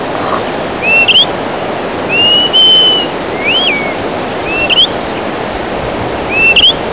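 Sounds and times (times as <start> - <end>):
greater pewee whistled calls: 0.2 - 1.4, 2.0 - 5.2, 6.3 - 6.8.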